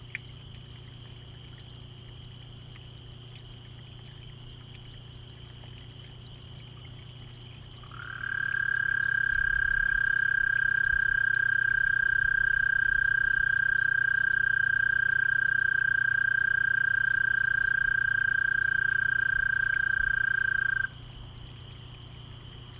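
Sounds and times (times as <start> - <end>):
low constant hum: 0.0 - 22.7
frog trilling: 7.8 - 21.0.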